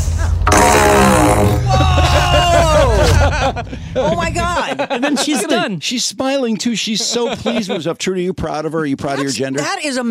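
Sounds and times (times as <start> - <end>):
fart blown through long PVC pipe: 0.4 - 1.8
laughter: 1.6 - 5.7, 6.9 - 7.9
speech: 3.5 - 10.1.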